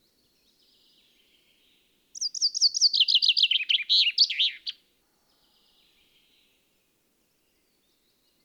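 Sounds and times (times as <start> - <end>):
common chaffinch Fringilla coelebs singing: 2.2 - 4.8.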